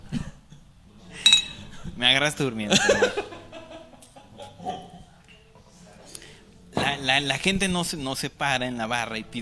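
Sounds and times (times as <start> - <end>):
two glasses clinking in a toast: 1.2 - 1.8
speech: 2.0 - 3.4, 7.0 - 9.4
laughter: 2.7 - 5.1.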